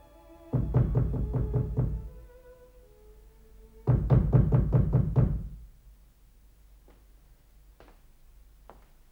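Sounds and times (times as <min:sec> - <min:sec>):
firm rapid knocking on a door: 0:00.5 - 0:02.3, 0:03.8 - 0:05.6.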